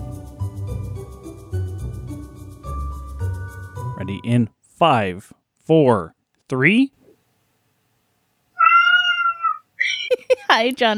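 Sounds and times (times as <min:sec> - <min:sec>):
speech: 0:04.0 - 0:07.0, 0:10.5 - 0:10.9
pet cat meowing: 0:08.6 - 0:09.8.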